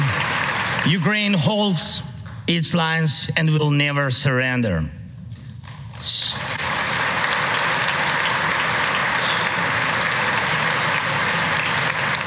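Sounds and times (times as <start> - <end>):
large congressional audience applauding: 0.0 - 1.5, 5.6 - 12.2
speech: 0.8 - 5.0, 6.0 - 6.6.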